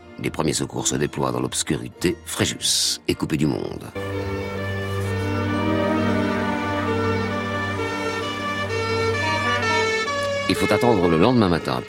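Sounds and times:
speech: 0:00.2 - 0:04.6, 0:10.5 - 0:11.8
fire engine siren wailing after a flood in Fréjus: 0:04.0 - 0:11.4.

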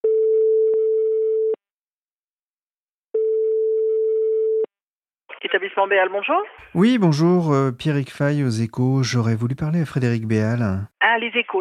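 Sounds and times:
telephone ringback tone while placing a call: 0:00.0 - 0:01.6, 0:03.2 - 0:04.7
speech: 0:05.5 - 0:11.6.

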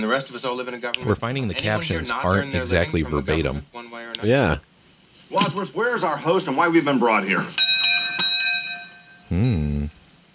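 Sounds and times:
speech: 0:00.0 - 0:04.7, 0:05.3 - 0:07.7, 0:09.3 - 0:10.0
bell strike ringing: 0:07.6 - 0:09.2.

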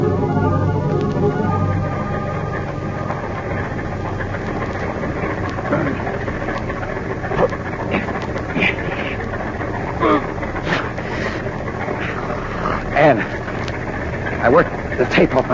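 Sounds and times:
car engine idling in a closed garage: 0:00.0 - 0:15.5
laughter: 0:04.5 - 0:15.4
faint vocal sounds: 0:04.8 - 0:06.5, 0:07.3 - 0:13.6.

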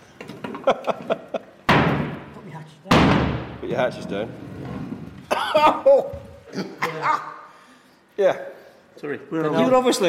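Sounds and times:
speech: 0:00.7 - 0:01.3, 0:03.7 - 0:04.8, 0:05.5 - 0:07.4, 0:08.2 - 0:10.0
sticking door being kicked open: 0:02.9 - 0:03.6.

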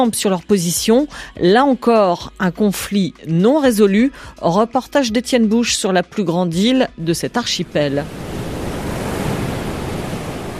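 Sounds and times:
speech: 0:00.0 - 0:08.3
strong wind gusts roaring across a volcanic island with harsh climate: 0:08.0 - 0:10.5.

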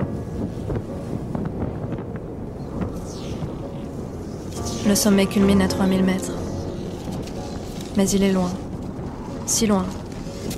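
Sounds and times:
strong cold wind buffeting the microphone: 0:00.0 - 0:10.5
speech: 0:04.9 - 0:06.4, 0:08.0 - 0:08.6, 0:09.5 - 0:10.0
rustling: 0:06.5 - 0:10.5.

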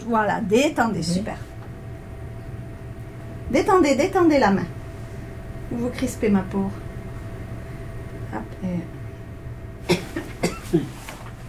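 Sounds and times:
speech: 0:00.0 - 0:01.5, 0:03.5 - 0:04.8, 0:05.7 - 0:06.8, 0:08.3 - 0:08.9
patient coughing wet chesty coughs with phlegm: 0:09.8 - 0:11.0.

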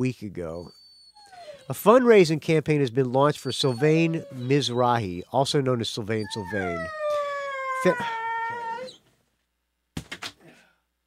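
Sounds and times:
speech: 0:00.0 - 0:00.8, 0:01.7 - 0:07.2, 0:07.8 - 0:08.6
dog yelping or barking: 0:00.7 - 0:01.7, 0:03.3 - 0:05.0, 0:06.2 - 0:09.0
dog howling: 0:01.2 - 0:01.7, 0:03.4 - 0:05.0, 0:06.2 - 0:09.0.

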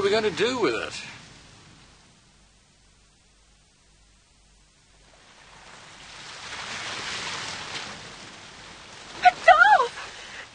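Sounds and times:
sea waves washing onto a sandy beach: 0:00.0 - 0:02.1, 0:04.9 - 0:10.5
speech: 0:00.1 - 0:01.2.

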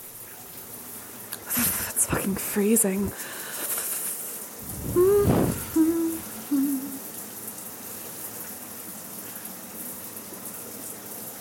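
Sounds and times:
running shower water: 0:00.0 - 0:11.3
speech: 0:02.3 - 0:03.4
short low hooting tones: 0:04.6 - 0:07.1.

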